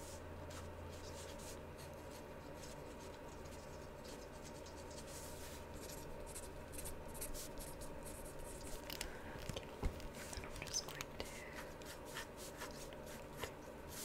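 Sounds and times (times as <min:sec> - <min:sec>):
pencil sketching across paper: 0:00.0 - 0:08.5, 0:11.5 - 0:14.0
faint low hum: 0:00.0 - 0:14.0.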